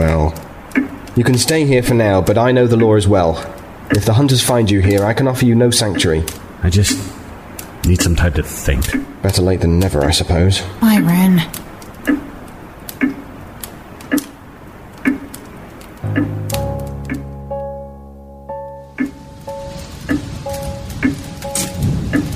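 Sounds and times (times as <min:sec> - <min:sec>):
soft rain pattering: 0:00.0 - 0:17.7, 0:18.7 - 0:22.3
clock ticking: 0:00.0 - 0:22.3
speech: 0:01.2 - 0:07.2, 0:07.8 - 0:12.3
low sustained musical tones: 0:16.0 - 0:22.3.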